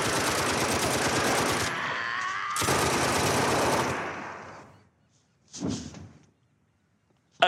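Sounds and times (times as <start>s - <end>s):
long dense bursts of rapid gunfire: 0.0s - 2.0s, 2.6s - 4.6s.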